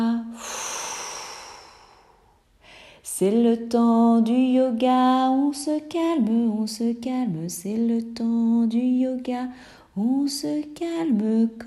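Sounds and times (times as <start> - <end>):
slow exhaling breath during a yoga exercise: 0.4 - 3.0
speech: 3.2 - 11.6.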